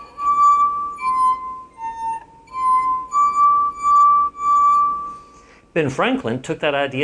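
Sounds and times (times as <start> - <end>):
melody on drinking glasses filled with different amounts of water: 0.0 - 5.5
speech: 5.8 - 7.0.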